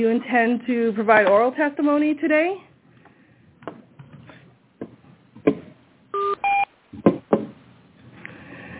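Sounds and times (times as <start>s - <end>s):
speech: 0.0s - 2.7s
conference call join tone of short electronic dual-pitch beeps: 6.2s - 6.7s
thin phone-line hiss: 6.2s - 6.7s.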